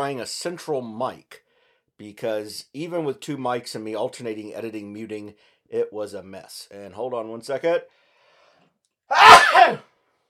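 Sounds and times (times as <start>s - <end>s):
speech: 0.0s - 1.4s, 2.0s - 8.0s, 9.1s - 9.9s
person sneezing: 9.1s - 9.8s.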